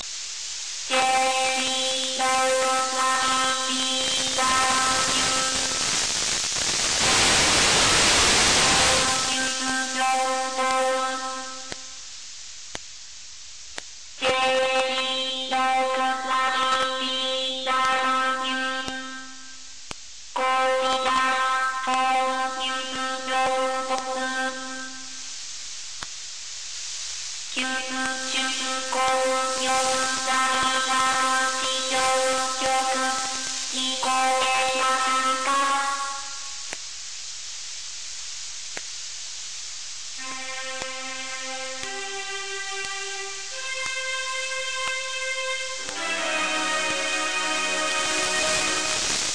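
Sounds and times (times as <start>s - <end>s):
HORYU-4 satellite digital singer voice: 0.9s - 5.8s, 7.0s - 12.0s, 14.2s - 19.4s, 20.4s - 25.2s, 27.5s - 36.6s, 40.2s - 49.2s.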